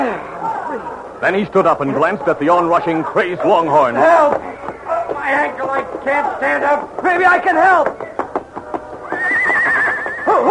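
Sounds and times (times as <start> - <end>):
speech: 1.2 - 8.1
frightened horse neighing: 9.1 - 10.4.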